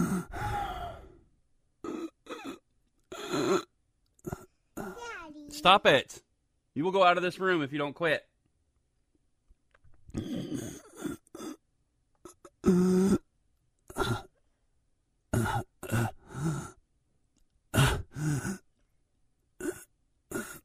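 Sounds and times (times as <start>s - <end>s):
father performing exaggerated deliberate breaths: 0.0s - 1.3s
father's throaty exhalations: 0.0s - 5.0s, 10.1s - 11.6s, 13.9s - 14.4s, 15.3s - 16.8s, 17.7s - 18.7s, 19.6s - 20.6s
speech: 5.6s - 6.2s, 6.8s - 8.3s.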